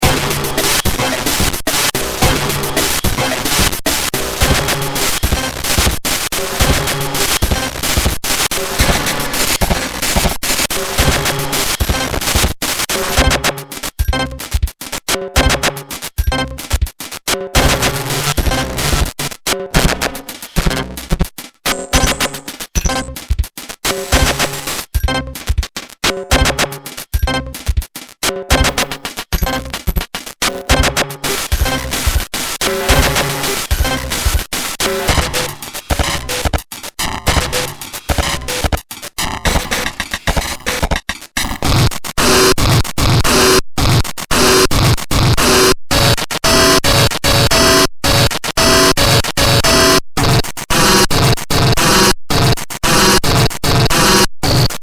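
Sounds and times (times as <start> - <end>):
drum: 0.0 - 54.8.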